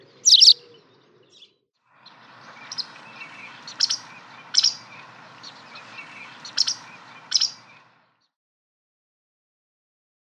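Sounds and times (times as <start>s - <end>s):
White wagtail giving high scratchy chirps: 0.2s - 0.6s, 2.0s - 7.9s.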